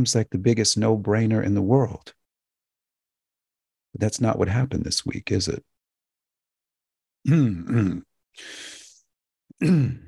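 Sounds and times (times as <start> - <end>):
speech: 0.0 - 2.2, 3.9 - 5.7, 7.2 - 8.8, 9.6 - 10.0
person clearing throat: 7.3 - 8.1, 9.5 - 10.0
breathy exhale: 8.4 - 9.0.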